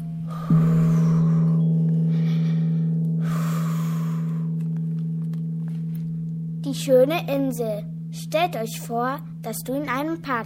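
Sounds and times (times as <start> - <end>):
deep breathing in and out: 0.0 - 5.0
steady low humming tone: 0.0 - 10.4
speech: 0.5 - 0.8, 6.7 - 10.4.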